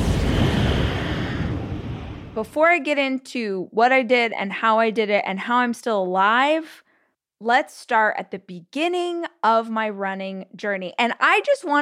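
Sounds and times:
explosion sound effect: 0.0s - 2.6s
speech: 2.4s - 6.8s, 7.4s - 11.8s.

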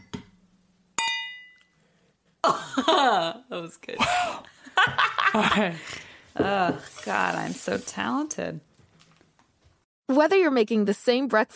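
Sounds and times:
glasses clinking in a toast: 1.0s - 1.8s
speech: 2.5s - 8.7s, 10.1s - 11.5s.

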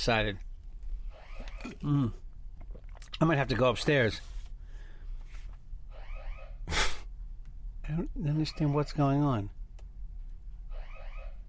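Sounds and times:
speech: 0.0s - 0.4s, 1.6s - 2.2s, 3.2s - 4.3s, 7.9s - 9.6s
low hum: 0.0s - 11.4s
electronic alarm warbling: 1.1s - 1.8s, 5.9s - 6.6s, 8.3s - 9.1s, 10.7s - 11.4s.

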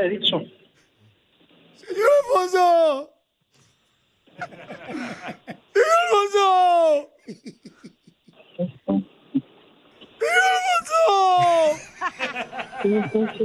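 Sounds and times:
speech: 0.0s - 0.6s, 1.8s - 3.2s, 4.4s - 7.9s, 8.6s - 9.1s, 10.2s - 13.4s
laughter: 1.8s - 3.0s, 4.4s - 8.4s, 10.2s - 13.4s
woman crying over the phone: 4.5s - 7.9s, 10.2s - 13.4s.

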